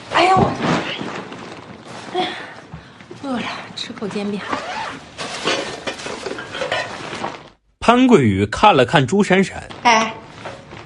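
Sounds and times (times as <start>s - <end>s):
speech: 3.3s - 5.1s, 7.9s - 10.2s
pots, pans and utensils clattering as they are unpacked from a bundle: 5.2s - 7.5s.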